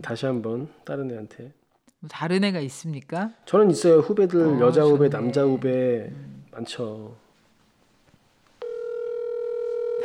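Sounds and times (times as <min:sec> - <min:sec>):
speech: 0:00.0 - 0:07.2
telephone ringback tone during a call: 0:08.6 - 0:10.0.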